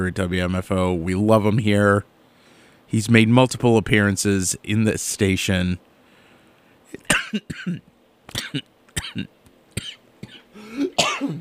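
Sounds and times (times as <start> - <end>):
speech: 0.0 - 2.1, 2.9 - 5.9, 6.9 - 10.0
person coughing and clearing throat: 7.0 - 11.4.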